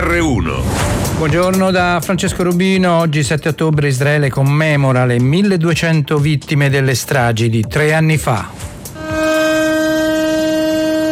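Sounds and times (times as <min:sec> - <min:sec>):
speech: 0:00.1 - 0:08.7
steady commemoration siren tone in Israel: 0:09.0 - 0:11.1.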